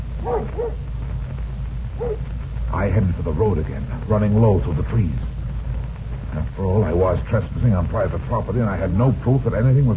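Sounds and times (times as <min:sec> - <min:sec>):
low rumble: 0:00.0 - 0:09.9
dog barking: 0:00.2 - 0:00.8, 0:02.0 - 0:02.2
speech: 0:00.2 - 0:00.9, 0:02.0 - 0:05.4, 0:06.3 - 0:09.9.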